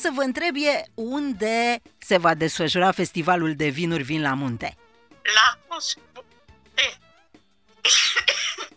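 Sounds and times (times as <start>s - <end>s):
speech: 0.0s - 6.2s, 6.8s - 7.0s, 7.8s - 8.6s
person sneezing: 7.9s - 8.7s.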